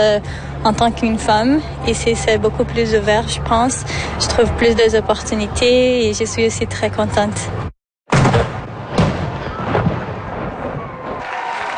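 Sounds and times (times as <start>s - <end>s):
speech: 0.0s - 7.7s
cannon salute shots booming and echoing: 8.1s - 11.2s.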